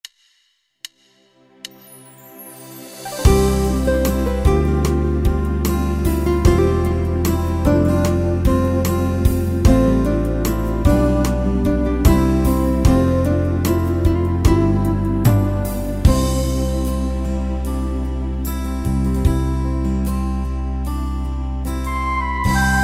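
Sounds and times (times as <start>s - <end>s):
Yamaha PSR-3000 slow worship keyboard style: 3.1s - 22.8s.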